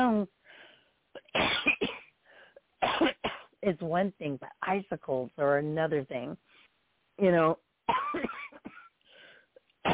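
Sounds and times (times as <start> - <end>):
speech: 0.2 - 0.4, 3.6 - 6.6, 7.2 - 8.3
person without their inhaler coughing in harsh breathy bursts: 1.2 - 2.1, 7.9 - 8.9.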